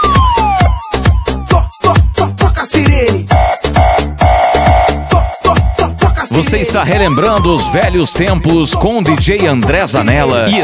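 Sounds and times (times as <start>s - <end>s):
synthetic siren effect wailing: 0.0s - 1.2s, 3.3s - 8.1s
loud pounding dance beat: 0.0s - 10.6s
steady electronic tone: 3.4s - 5.9s
speech: 6.4s - 10.6s.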